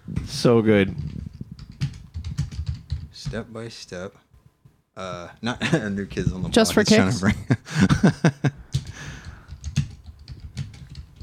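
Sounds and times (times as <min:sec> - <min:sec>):
speech: 0:00.4 - 0:01.1, 0:03.3 - 0:04.2, 0:05.0 - 0:08.6
typing on a computer keyboard: 0:01.0 - 0:03.4, 0:08.7 - 0:11.2.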